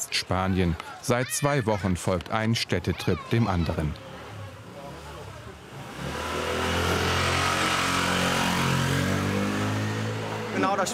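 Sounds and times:
speech: 0.3 - 4.1, 10.6 - 10.9
motorcycle engine revving in narrow city streets: 4.0 - 10.9.

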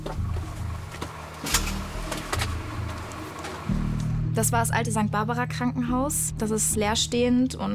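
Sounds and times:
car engine humming while slowly moving back: 0.0 - 5.6
speech: 4.4 - 7.7.

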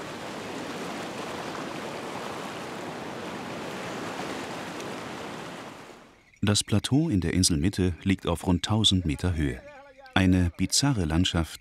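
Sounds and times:
waves washing through natural rock swimming pools on an island shore: 0.0 - 6.1
speech: 6.4 - 11.5.

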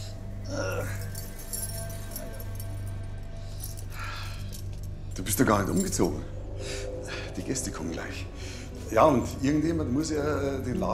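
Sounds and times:
keys jangling: 0.5 - 6.3
speech: 5.2 - 6.4, 7.4 - 10.9.

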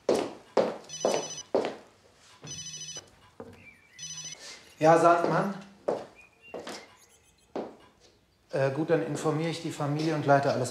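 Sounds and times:
mobile phone ringing with repeating electronic ringtone: 0.8 - 1.6, 2.3 - 5.0, 6.9 - 7.6
speech: 4.8 - 5.7, 8.6 - 10.6.

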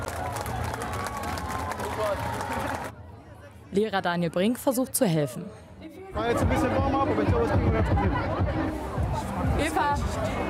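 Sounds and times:
crowd applause at a children's race finish: 0.0 - 2.9
chatter and cheering voices at a children's race finish: 0.0 - 3.2, 6.2 - 10.4
speech: 2.0 - 2.7, 3.7 - 10.4.

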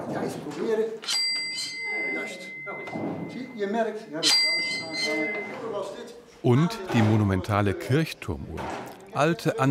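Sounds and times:
speech: 0.2 - 1.2, 3.6 - 9.6
old carillon bells ringing in the tower of a cathedral: 1.1 - 5.8.

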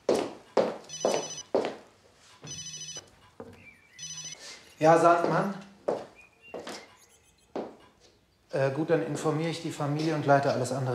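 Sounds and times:
mobile phone ringing with electronic ringtone: 0.8 - 1.6, 2.3 - 5.2, 6.8 - 7.6
speech: 4.8 - 5.7, 8.6 - 10.9.

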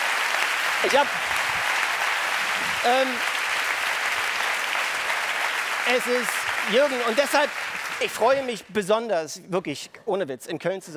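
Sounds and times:
audience applause: 0.0 - 8.7
speech: 0.8 - 1.4, 2.6 - 3.3, 5.9 - 10.9.

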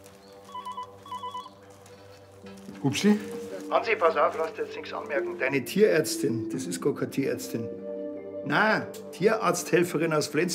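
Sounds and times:
telephone ringing with rapid trill of electronic tones: 0.5 - 1.6
speech: 2.4 - 7.8, 8.4 - 10.5.

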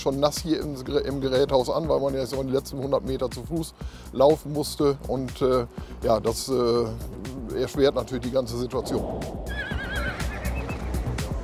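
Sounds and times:
speech: 0.0 - 9.8
young stallions neighing in a herd: 9.0 - 11.3.

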